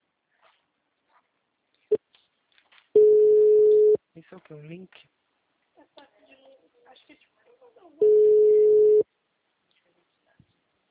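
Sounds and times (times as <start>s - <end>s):
telephone ringtone tone: 3.0s - 4.0s, 8.0s - 9.0s
speech: 4.3s - 5.2s.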